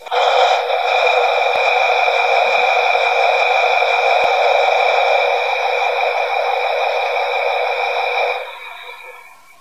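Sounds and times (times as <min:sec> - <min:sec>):
diesel engine: 0:00.0 - 0:09.6.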